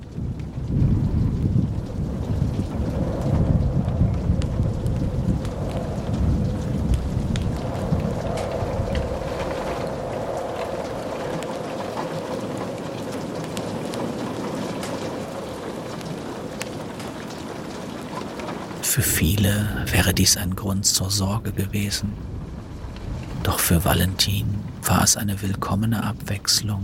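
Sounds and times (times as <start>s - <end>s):
low rumble: 0.0s - 11.2s, 18.8s - 26.8s
heavy rain pattering against windows: 0.0s - 26.8s
speech: 19.0s - 22.4s, 23.7s - 26.8s.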